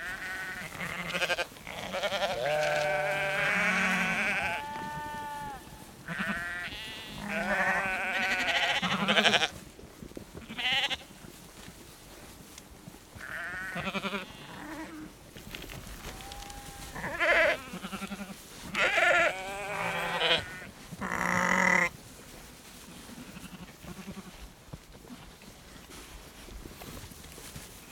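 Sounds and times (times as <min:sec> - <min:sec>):
flock of sheep bleating: 0:00.0 - 0:09.5, 0:13.2 - 0:15.1, 0:16.1 - 0:21.9, 0:23.2 - 0:24.4
herd of sheep walking and shuffling: 0:00.0 - 0:27.9.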